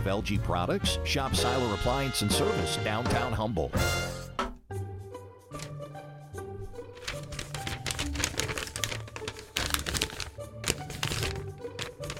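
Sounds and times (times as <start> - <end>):
speech: 0.0 - 4.2
paper crinkling and rustling: 5.6 - 5.8, 6.7 - 12.1.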